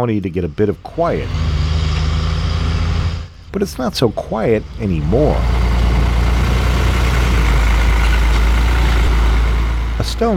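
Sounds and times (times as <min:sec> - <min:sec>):
speech: 0:00.0 - 0:01.5, 0:03.6 - 0:05.6, 0:10.0 - 0:10.3
heavy truck hauling cut trees rumbling over wooden boardwalk in marshland: 0:00.0 - 0:10.3.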